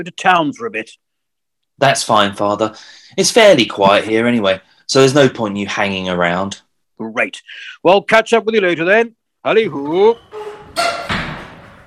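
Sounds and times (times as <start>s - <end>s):
speech: 0.0s - 1.1s, 1.8s - 10.9s
squeaky creak from door hinges: 9.6s - 11.8s
solid thump of door closing: 10.2s - 11.8s.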